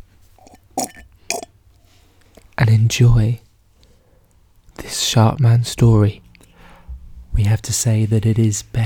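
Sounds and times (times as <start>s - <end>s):
slurping a milkshake through a straw: 0.4s - 1.5s
speech: 2.7s - 3.4s, 5.2s - 6.3s, 7.4s - 8.8s.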